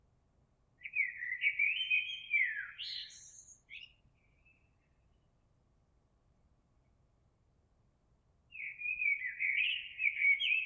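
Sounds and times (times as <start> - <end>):
Eurasian blackbird singing: 0.8 - 4.6, 8.6 - 10.6.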